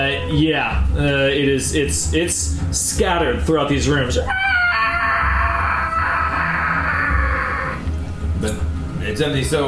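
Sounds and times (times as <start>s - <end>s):
speech: 0.0s - 4.5s, 9.2s - 9.6s
high strained scream: 4.2s - 7.9s.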